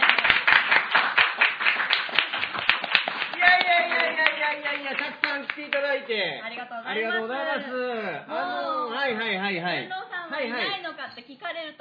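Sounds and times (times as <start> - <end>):
small group hand clapping fast: 0.0 - 5.9
speech: 4.6 - 11.8.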